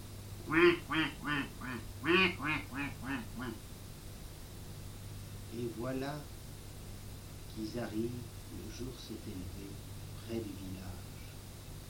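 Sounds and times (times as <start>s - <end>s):
low steady hum: 0.0s - 11.8s
ducks quacking: 0.5s - 3.6s
speech: 5.8s - 6.4s, 7.6s - 11.0s.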